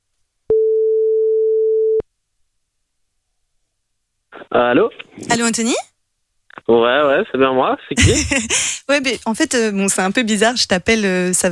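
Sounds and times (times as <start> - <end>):
ringback tone on an outgoing telephone call: 0.5 - 2.0
speech: 4.5 - 5.9, 6.7 - 11.5.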